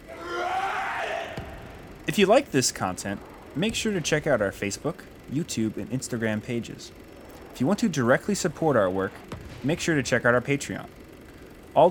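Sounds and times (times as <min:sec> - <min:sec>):
man screaming long and strained: 0:00.0 - 0:01.4
speech: 0:02.1 - 0:11.0.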